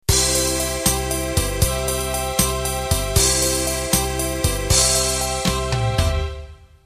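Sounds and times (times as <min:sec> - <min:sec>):
pop music intro in 12/8 time: 0:00.1 - 0:06.8.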